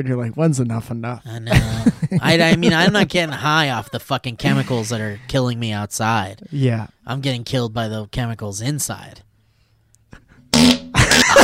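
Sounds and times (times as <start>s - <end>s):
speech: 0.0s - 9.3s
laughter: 1.4s - 5.4s, 11.0s - 11.4s
loud fart: 10.5s - 11.0s.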